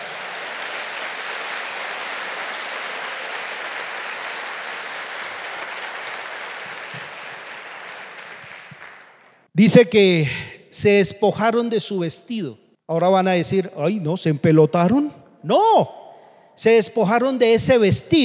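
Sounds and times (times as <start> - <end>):
large audience applauding: 0.0 - 9.5
speech: 9.6 - 16.0, 16.6 - 18.2.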